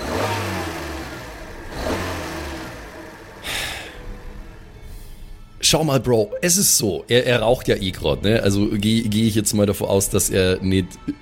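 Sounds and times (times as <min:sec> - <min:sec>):
car engine idling and revving as gas pedal is pumped: 0:00.0 - 0:05.6
speech: 0:05.7 - 0:11.1.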